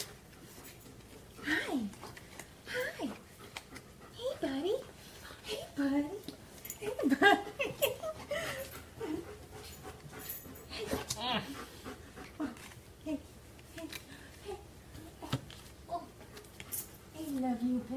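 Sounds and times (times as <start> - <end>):
dog panting: 0.0 - 13.3, 15.9 - 17.9.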